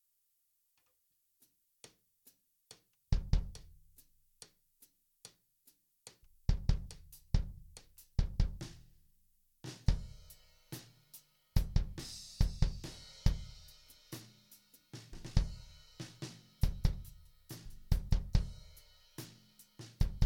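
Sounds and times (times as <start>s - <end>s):
drum solo: 3.2s - 3.8s, 6.5s - 9.0s, 9.6s - 20.2s.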